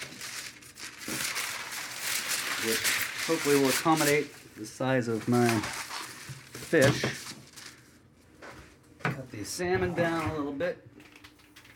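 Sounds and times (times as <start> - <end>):
parchment paper crinkling as it is unfolded: 0.0 - 8.0
speech: 2.6 - 5.8, 6.7 - 7.2, 9.4 - 10.9.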